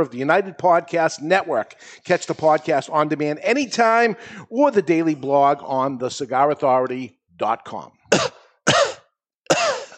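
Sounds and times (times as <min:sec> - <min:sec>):
speech: 0:00.0 - 0:08.8
person coughing forcefully: 0:08.1 - 0:09.9.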